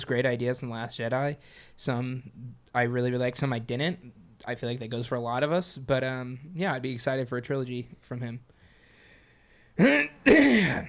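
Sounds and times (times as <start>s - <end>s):
speech: 0.0s - 8.5s, 9.8s - 10.8s
person coughing into a microphone: 9.8s - 10.8s.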